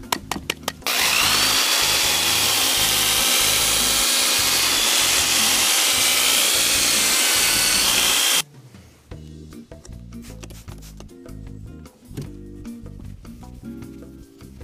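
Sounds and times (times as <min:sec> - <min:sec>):
power drill with fine sanding disc grinding against a surface: 0:00.8 - 0:08.4.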